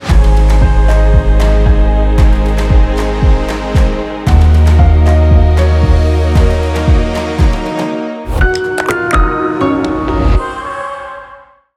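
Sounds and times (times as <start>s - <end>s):
music: 0.0s - 11.7s.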